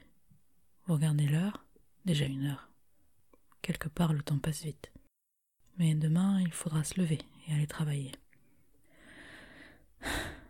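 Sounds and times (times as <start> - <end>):
speech: 0.9 - 2.7, 3.7 - 5.0, 5.8 - 8.2
deep breath: 8.8 - 10.4.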